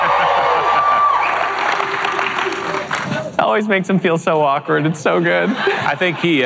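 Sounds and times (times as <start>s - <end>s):
whoops from a large audience: 0.0s - 1.9s
large audience clapping and cheering loudly: 0.0s - 3.4s
speech: 3.6s - 6.4s
laughter: 4.9s - 6.4s.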